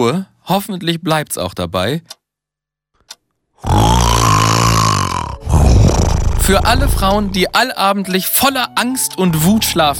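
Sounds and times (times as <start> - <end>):
speech: 0.0 - 2.2, 3.6 - 4.0, 6.5 - 9.9
man snoring loudly: 3.6 - 7.6.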